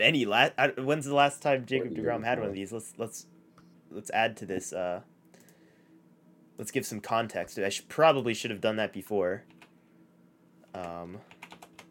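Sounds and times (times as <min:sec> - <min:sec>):
speech: 0:00.0 - 0:05.1, 0:06.6 - 0:09.5, 0:10.8 - 0:11.4
voiced hum: 0:01.5 - 0:04.8
typing on a mechanical keyboard: 0:10.7 - 0:11.9.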